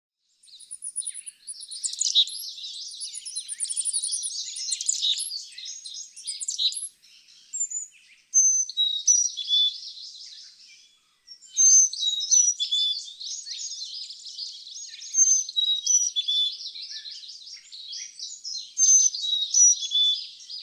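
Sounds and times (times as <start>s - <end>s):
Carolina Chickadee calling: 0.4s - 20.6s.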